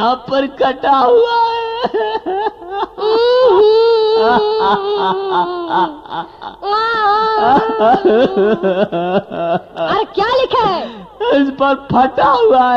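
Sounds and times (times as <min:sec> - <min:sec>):
speech: 0:00.0 - 0:12.7
child crying: 0:01.4 - 0:09.0
laughter: 0:01.6 - 0:11.4.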